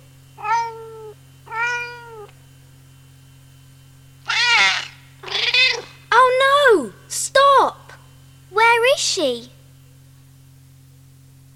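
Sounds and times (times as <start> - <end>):
faint steady hum: 0.0 - 11.5
kitten meowing: 0.4 - 2.3, 4.3 - 5.9.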